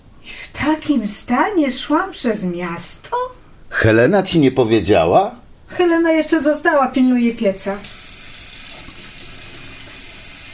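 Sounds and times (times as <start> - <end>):
speech: 0.7 - 8.0
water running from a tap into a sink: 7.8 - 10.5.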